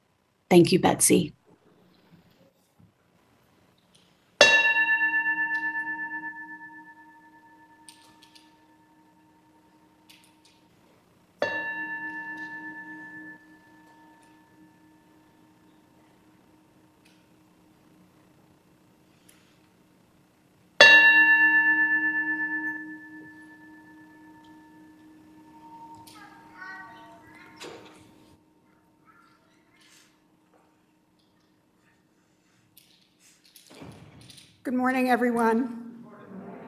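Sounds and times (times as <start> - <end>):
speech: 0.5 - 1.4, 34.8 - 35.8
bell rung to call worship: 4.4 - 9.8, 11.4 - 15.2, 20.8 - 28.0.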